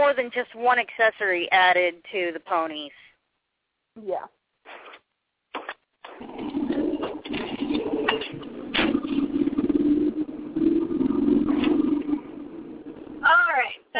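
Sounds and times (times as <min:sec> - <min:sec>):
speech: 0:00.0 - 0:03.0, 0:04.0 - 0:04.8
bumps inside a car: 0:05.5 - 0:13.8
steady low drone inside a car: 0:07.0 - 0:13.8.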